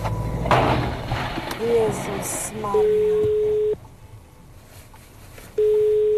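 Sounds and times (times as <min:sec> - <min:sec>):
faint noise: 0:00.0 - 0:06.1
speech: 0:01.6 - 0:03.4
railway level crossing warning signal electronic tone in Poland: 0:01.6 - 0:03.8, 0:05.6 - 0:06.1.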